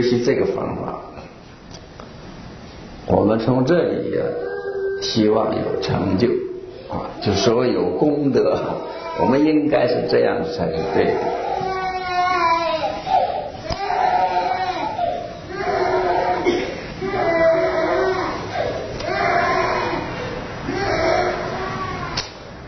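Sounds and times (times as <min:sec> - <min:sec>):
speech: 0:00.0 - 0:01.2, 0:03.1 - 0:11.6
small child crying: 0:10.7 - 0:22.2.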